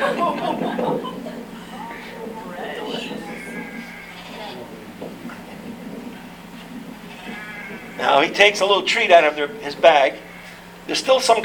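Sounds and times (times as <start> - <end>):
laughter: 0.0 - 3.8
indistinct human voices murmuring: 0.0 - 11.4
flock of sheep bleating: 1.6 - 4.7, 7.1 - 8.7, 9.7 - 10.6
speech: 8.2 - 10.3, 10.9 - 11.4.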